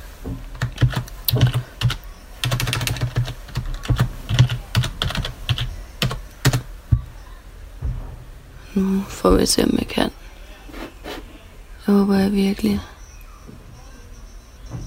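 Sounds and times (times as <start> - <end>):
typing on a computer keyboard to log in to a VPN: 0.6 - 6.7
speech: 8.8 - 10.2, 12.1 - 12.9.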